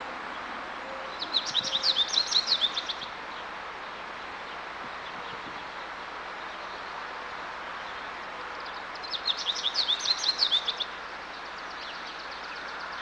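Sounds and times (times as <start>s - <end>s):
steady background hiss: 0.0s - 13.0s
bird twittering: 1.2s - 3.1s, 9.0s - 10.9s.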